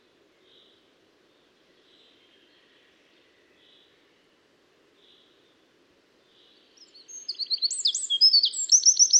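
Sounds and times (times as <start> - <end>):
Eurasian wren Troglodytes troglodytes singing: 6.8 - 9.1.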